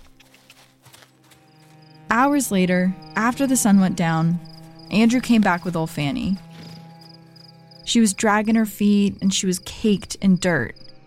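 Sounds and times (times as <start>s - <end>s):
horse hooves clip-clopping at a walk: 0.0s - 2.0s, 4.4s - 7.6s
speech: 2.1s - 6.5s, 7.9s - 10.8s.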